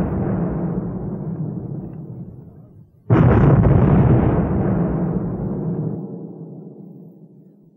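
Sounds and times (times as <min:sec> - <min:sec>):
artillery cannon fire: 0:00.0 - 0:07.4.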